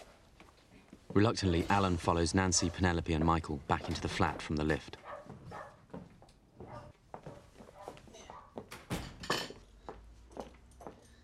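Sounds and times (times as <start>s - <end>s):
speech: 1.2s - 5.0s
dishes and cutlery clattering as they are cleared away: 8.1s - 9.7s.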